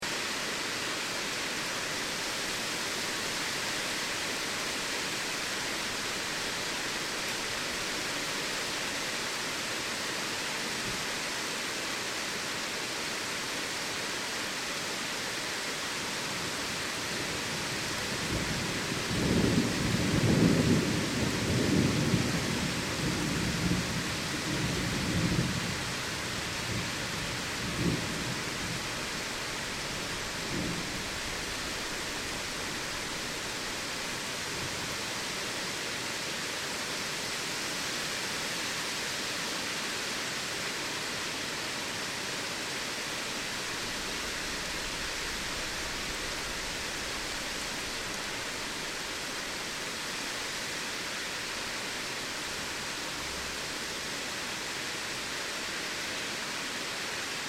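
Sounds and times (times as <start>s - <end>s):
heavy rain in a storm: 0.0s - 57.4s
thunder in a storm: 18.2s - 28.9s, 30.0s - 33.0s.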